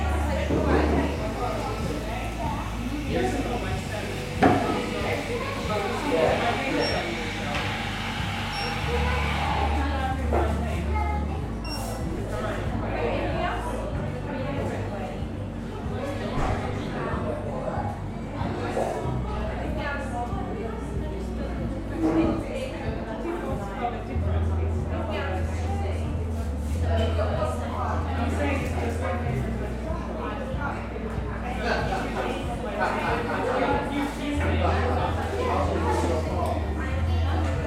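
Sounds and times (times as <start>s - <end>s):
overlapping chatter from many voices in a coffee shop: 0.0s - 37.6s
espresso machines whirring: 2.3s - 9.8s.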